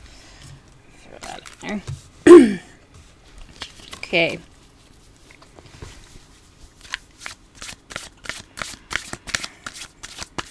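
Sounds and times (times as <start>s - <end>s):
speech: 1.1s - 2.6s, 4.1s - 4.5s
playing cards being shuffled: 1.2s - 1.8s, 3.5s - 4.1s, 4.8s - 10.4s.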